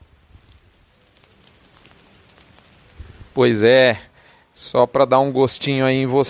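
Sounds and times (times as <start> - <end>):
steady rain pattering on a surface: 0.0 - 4.0
speech: 3.4 - 6.2.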